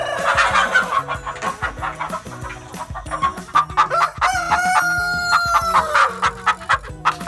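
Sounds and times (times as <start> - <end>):
rooster crowing: 0.0 - 2.4, 3.1 - 6.4
hens clucking: 0.0 - 7.2.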